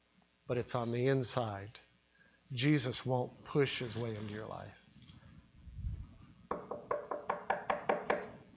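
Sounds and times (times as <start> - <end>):
speech: 0.5 - 1.9, 2.5 - 4.8
knocking on a door: 6.5 - 8.4.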